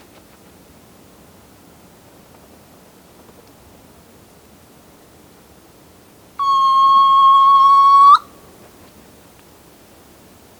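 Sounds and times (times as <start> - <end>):
soft-plumaged petrel Pterodroma mollis whistling: 6.4 - 8.3.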